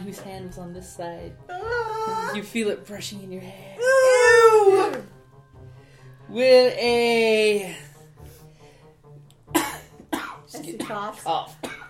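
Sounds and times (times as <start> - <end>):
speech: 0.1 - 5.1, 6.3 - 7.9, 10.6 - 11.7
person making a monstrous cough imitating an evil ghoul: 9.5 - 11.8.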